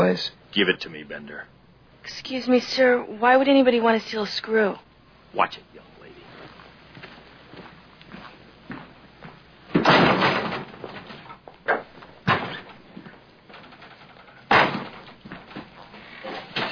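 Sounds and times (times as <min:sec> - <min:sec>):
speech: 0:00.1 - 0:05.9
heavy door slamming shut: 0:09.7 - 0:11.1, 0:14.5 - 0:15.2.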